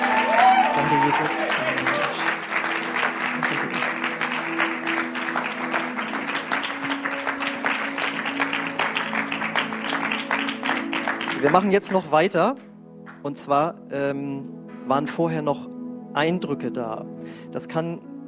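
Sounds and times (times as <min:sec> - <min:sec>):
crowd applauding: 0:00.0 - 0:12.1
speech: 0:01.1 - 0:01.7, 0:11.5 - 0:18.1.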